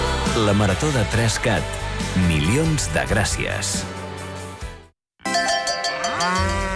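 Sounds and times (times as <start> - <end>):
speech: 0.4 - 4.0
dairy cow mooing: 5.8 - 6.7.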